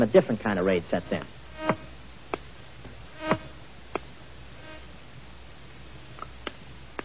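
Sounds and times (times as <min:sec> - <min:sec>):
speech: 0:00.0 - 0:01.8
steady hiss: 0:00.0 - 0:07.0
thin whining mosquito buzz: 0:00.6 - 0:06.4.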